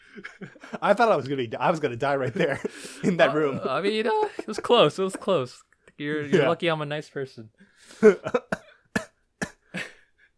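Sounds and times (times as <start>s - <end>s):
laughter: 0.0s - 5.6s
speech: 0.2s - 8.6s
person coughing harshly: 8.1s - 10.0s.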